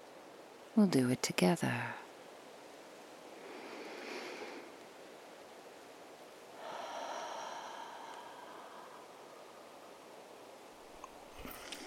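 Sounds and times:
speech: 0:00.8 - 0:02.0
person taking a deep breath with eyes closed: 0:03.3 - 0:04.8, 0:06.5 - 0:10.2.

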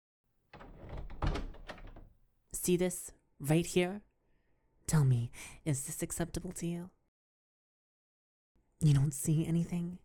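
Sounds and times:
door being pushed closed: 0:00.6 - 0:02.1
speech: 0:02.6 - 0:04.1, 0:04.9 - 0:07.0, 0:08.8 - 0:10.0.

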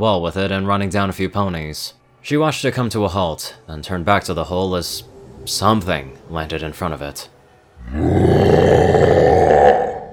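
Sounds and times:
speech: 0:00.0 - 0:09.8
deep growling monster roar: 0:07.8 - 0:10.1.

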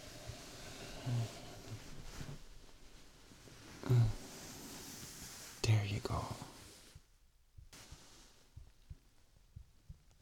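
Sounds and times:
soft hiss: 0:00.0 - 0:10.2
human heartbeat thumping: 0:07.5 - 0:10.2.

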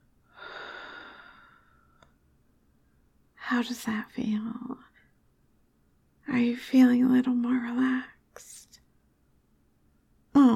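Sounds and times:
slow deep breath during a guided relaxation exercise: 0:00.3 - 0:02.1
speech: 0:03.5 - 0:04.9, 0:06.3 - 0:08.7.

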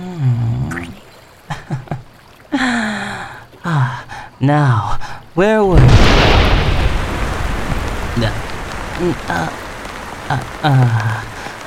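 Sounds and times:
short voiced sounds: 0:00.6 - 0:01.0
steady rain pouring down: 0:01.5 - 0:11.6
speech: 0:04.4 - 0:06.4, 0:08.2 - 0:08.4, 0:09.0 - 0:09.6, 0:10.3 - 0:11.3.

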